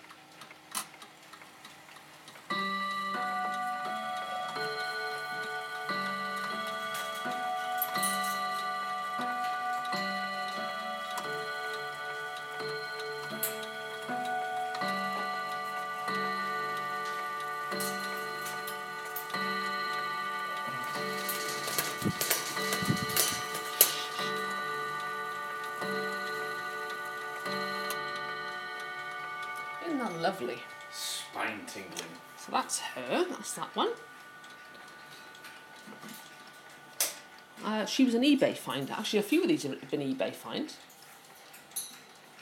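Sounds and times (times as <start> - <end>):
chime clock ticking: 0.0 - 42.4
speech: 30.3 - 30.7, 31.4 - 34.0, 37.7 - 40.9.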